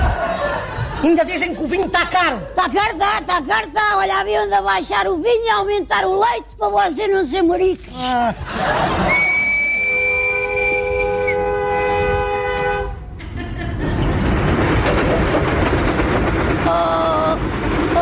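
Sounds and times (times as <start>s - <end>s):
laughter: 0.0s - 2.9s, 8.1s - 9.8s, 13.2s - 14.3s
speech: 1.0s - 9.1s
train rumbling past on the rails: 8.6s - 18.0s
train horn: 9.7s - 13.0s
train wheels clattering on rails: 12.2s - 18.0s.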